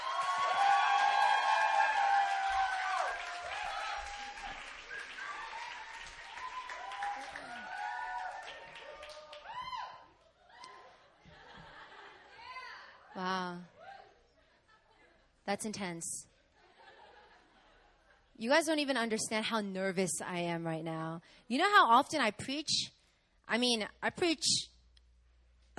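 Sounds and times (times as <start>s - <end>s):
audience applauding a pastor: 0.0s - 10.0s
whoops: 0.0s - 11.0s
laughter: 10.2s - 12.8s, 14.4s - 15.4s, 16.4s - 18.4s
speech: 15.5s - 16.3s, 18.4s - 24.7s.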